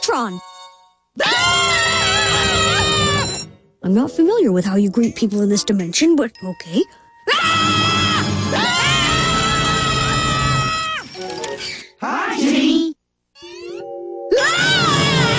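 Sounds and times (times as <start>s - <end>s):
speech: 0.1s - 0.5s, 1.2s - 2.7s, 3.8s - 7.9s
loud shrill screaming: 1.2s - 3.5s, 7.3s - 11.2s, 13.4s - 15.3s.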